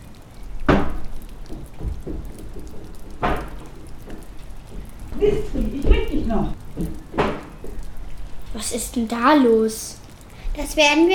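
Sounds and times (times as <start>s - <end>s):
splashes or gusts: 0.0s - 11.1s
steady rain: 0.0s - 11.1s
speech: 5.2s - 7.0s, 8.6s - 10.0s, 10.6s - 11.1s.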